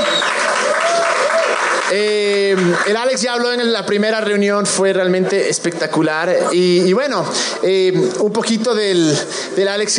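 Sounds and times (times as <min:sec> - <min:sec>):
audience clapping: 0:00.0 - 0:03.7
speech: 0:01.9 - 0:09.9.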